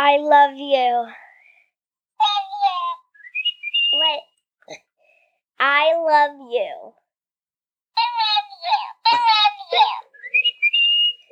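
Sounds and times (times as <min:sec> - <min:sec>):
speech: 0:00.1 - 0:01.2, 0:03.9 - 0:04.8, 0:05.6 - 0:07.0, 0:08.6 - 0:10.1
electronic toy bird playing back recorded speech in a squeaky voice: 0:02.2 - 0:03.0, 0:03.8 - 0:04.2, 0:08.0 - 0:11.3.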